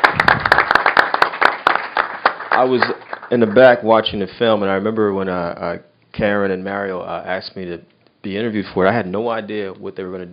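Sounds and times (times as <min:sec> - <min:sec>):
audience applause after a film screening: 0:00.0 - 0:03.7
speech: 0:02.6 - 0:10.3.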